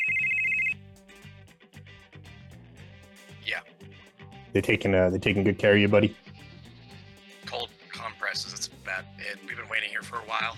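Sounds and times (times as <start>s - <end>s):
mobile phone ringtone: 0.0s - 0.8s
speech: 4.5s - 6.2s.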